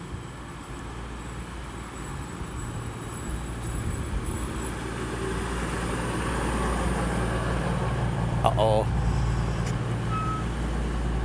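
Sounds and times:
train rolling into a station: 0.0s - 11.2s
speech: 8.6s - 9.0s
train brakes screeching: 9.0s - 10.5s.

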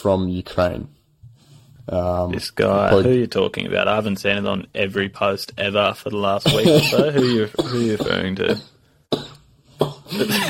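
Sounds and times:
speech: 0.0s - 1.0s, 1.9s - 8.7s, 9.8s - 10.4s
person coughing: 6.4s - 10.4s
raspy throat clearing: 6.4s - 10.4s.

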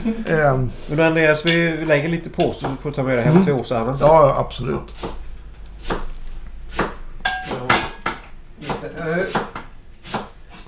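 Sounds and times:
speech: 0.0s - 5.2s
knife chopping leek on cutting board: 4.7s - 10.6s.

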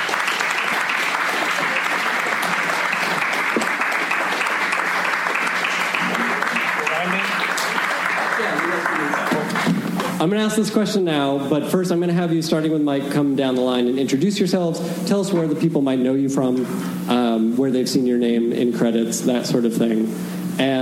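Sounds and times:
large audience applauding: 0.0s - 10.1s
speech: 10.2s - 20.7s.

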